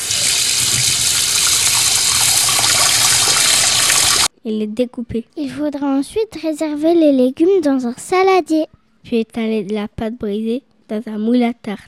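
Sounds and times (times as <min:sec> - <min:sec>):
tap water running while rinsing mushrooms and courgettes: 0:00.0 - 0:04.3
speech: 0:04.4 - 0:11.8.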